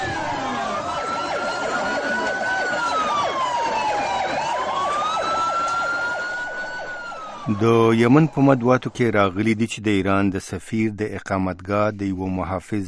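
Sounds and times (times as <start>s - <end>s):
ambulance siren wailing at a bomb blast site in Sanaa: 0.0s - 9.6s
speech: 7.5s - 12.8s.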